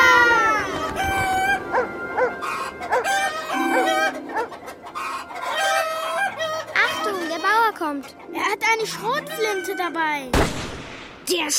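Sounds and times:
rooster crowing loudly on a chicken farm: 0.0s - 6.7s
overlapping hen calls: 0.0s - 10.2s
flock of chickens clucking and squawking on a chicken farm: 0.0s - 10.3s
speech: 11.3s - 11.5s.

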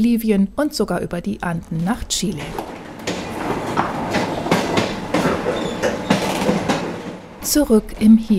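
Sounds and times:
speech: 0.0s - 2.8s, 7.4s - 8.3s
passenger train to Tucumán Argentina rolling on rails: 2.4s - 8.3s.

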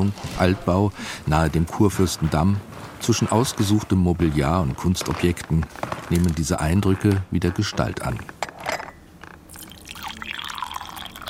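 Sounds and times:
speech: 0.0s - 8.3s
tea poured into a cup in an old-building apartment in Berlin: 9.5s - 11.2s.

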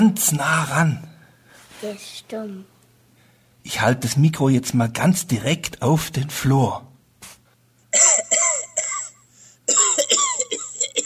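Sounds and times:
speech: 0.0s - 1.1s, 1.8s - 2.7s, 3.6s - 6.9s
faint hum: 0.0s - 11.0s
harsh rattling coughing: 7.9s - 11.0s.

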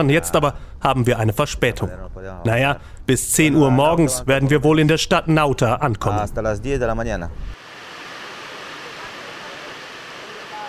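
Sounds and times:
speech: 0.0s - 7.6s
heavy rain pouring on a river boat: 7.6s - 10.6s.

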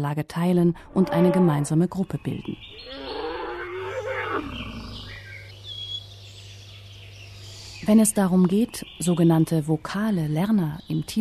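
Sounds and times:
speech: 0.0s - 3.2s, 7.8s - 11.2s
elephant deep steady rumble: 0.7s - 1.9s, 2.7s - 5.5s
elephant harsh roaring trumpet: 0.8s - 1.8s, 2.8s - 5.3s
faint bird chirps: 0.8s - 9.2s.

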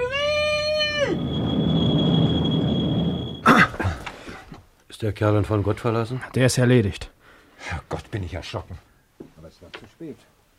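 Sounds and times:
thin steady metallic squeal of a tram on rails: 0.0s - 3.5s
tram rumbling past on its rails: 0.0s - 4.0s
speech: 5.0s - 8.9s, 9.6s - 10.3s.

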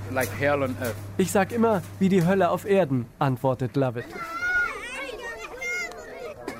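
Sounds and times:
speech: 0.1s - 4.4s
children playing in refugee camp: 3.9s - 6.5s.

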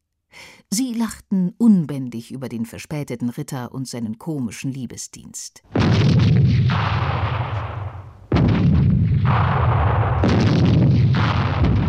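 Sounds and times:
speech: 0.8s - 7.5s
gunfire: 5.7s - 11.8s
heavy cannon blasts: 5.7s - 11.8s.

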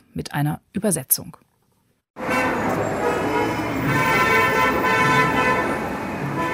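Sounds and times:
speech: 0.2s - 1.5s
car horns honking in city traffic: 2.2s - 6.5s
city traffic engines and road noise: 2.2s - 6.5s.

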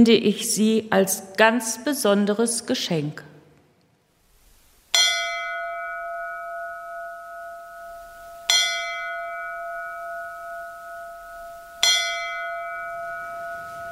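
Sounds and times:
speech: 0.0s - 3.3s
large church bell tolling: 4.9s - 13.9s.

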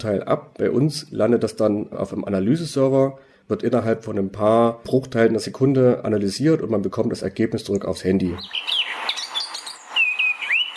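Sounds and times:
speech: 0.0s - 8.8s
Eurasian blackcap singing: 8.3s - 10.7s.

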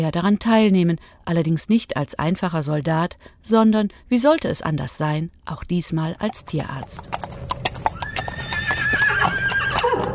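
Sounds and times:
speech: 0.0s - 7.5s
horse hooves clopping: 6.2s - 10.1s
soldiers' horse neighing: 6.9s - 10.1s.

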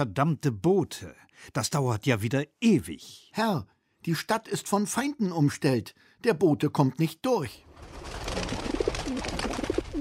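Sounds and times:
speech: 0.0s - 9.4s
pigeon cooing: 8.3s - 10.0s.

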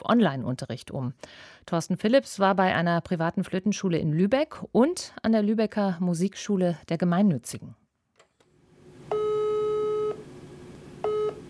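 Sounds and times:
speech: 0.1s - 7.8s
telephone line tones on an unanswered call: 9.1s - 10.2s, 11.0s - 11.4s.

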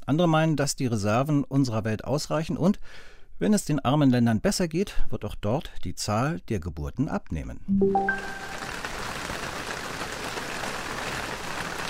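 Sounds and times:
speech: 0.1s - 8.6s
heavy rain mixed with hail during a mountain cycling stage: 8.0s - 11.8s.

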